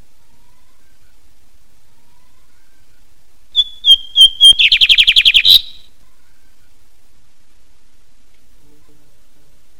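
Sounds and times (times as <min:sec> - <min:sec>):
lined seedeater singing bigode song: 0:03.6 - 0:05.9.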